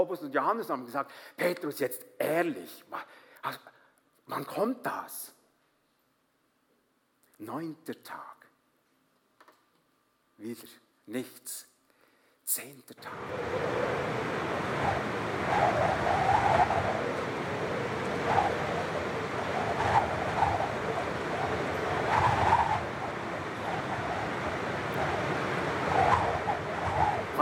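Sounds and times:
speech: 0.0 - 5.4, 7.4 - 8.4, 10.4 - 11.7, 12.5 - 16.8
loud storm wind rushing with surging gusts: 13.1 - 27.3.

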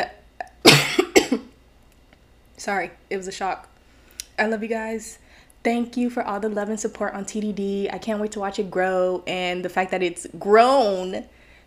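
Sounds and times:
person coughing after taking a shot: 0.6 - 1.5
speech: 2.6 - 3.7, 4.4 - 11.4.

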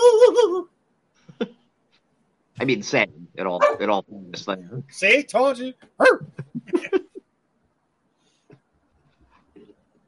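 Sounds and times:
speech: 2.6 - 7.0
dogs barking: 3.6 - 3.9.

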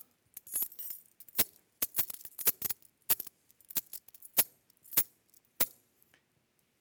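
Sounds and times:
keys jangling: 0.4 - 5.8.

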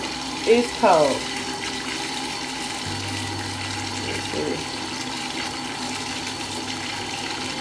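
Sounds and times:
water running from a bathtub faucet: 0.0 - 7.5
speech: 0.4 - 1.3, 4.4 - 4.8
low hum: 2.8 - 7.2.

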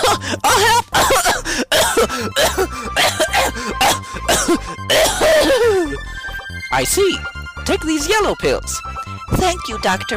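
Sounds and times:
uncontrollable coughing fit: 0.0 - 6.0
gasping: 1.4 - 6.3
speech: 6.8 - 8.8, 9.4 - 10.1.

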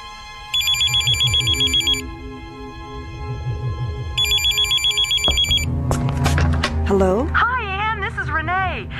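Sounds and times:
telephone ringing with rapid electronic trilling: 0.0 - 2.1, 4.2 - 5.7
low musical background: 0.0 - 8.9
speech: 6.9 - 7.5.

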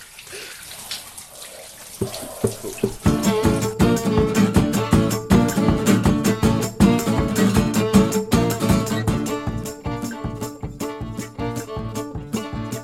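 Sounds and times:
running shower water hissing: 0.0 - 8.3
rhythmic music with punchy beats: 2.9 - 12.8.

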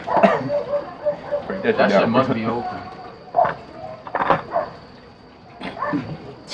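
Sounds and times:
dog barking excitedly: 0.0 - 1.9, 2.6 - 4.8, 5.7 - 6.1
speech: 1.6 - 2.9.

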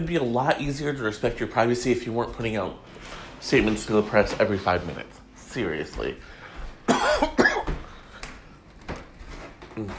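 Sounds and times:
speech: 0.0 - 7.4, 9.8 - 9.9
harsh coughs: 6.9 - 7.9.

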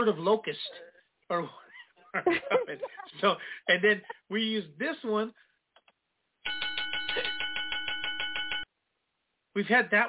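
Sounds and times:
speech: 0.0 - 5.5, 9.6 - 10.0
laughter: 2.0 - 4.2
doorbell ringing with rapid metallic strikes: 6.4 - 8.6.

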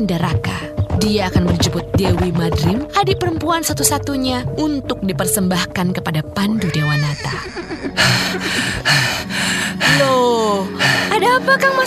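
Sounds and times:
speech: 0.0 - 11.8
laughter: 7.0 - 9.0
man panting heavily, out of breath: 7.7 - 10.1.

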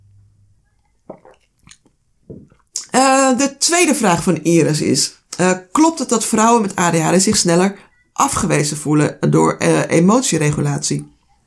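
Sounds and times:
person sipping water: 0.8 - 3.0
faint mouth clicks: 1.1 - 3.0
speech: 3.0 - 11.2.

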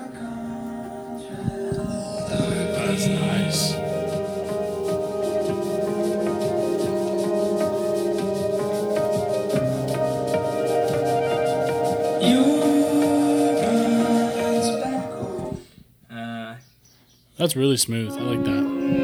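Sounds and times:
sustained keyboard chords: 0.0 - 15.6, 18.1 - 19.0
trumpet line played by a professional trumpet player: 2.0 - 15.5, 18.1 - 19.0
speech: 3.0 - 3.8, 17.4 - 19.0.

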